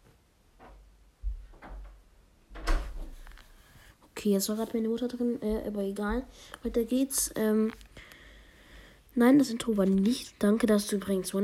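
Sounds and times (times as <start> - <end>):
wooden door being moved and shut: 1.6 - 3.2
speech: 4.2 - 8.1, 9.2 - 11.4.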